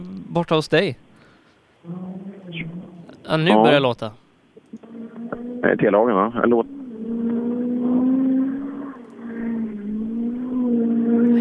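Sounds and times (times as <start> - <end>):
speech: 0.4 - 1.0, 1.8 - 4.8, 5.6 - 6.8
rally car engine revving hard at full speed along a short straight: 4.8 - 11.3.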